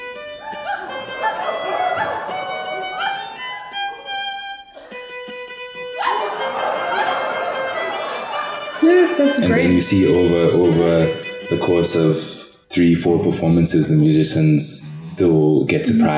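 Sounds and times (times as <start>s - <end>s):
audience at a musical performance imitating dogs barking: 0.3s - 4.9s, 5.7s - 9.4s
laughter: 0.3s - 12.2s, 13.0s - 16.1s
speech: 8.9s - 16.1s.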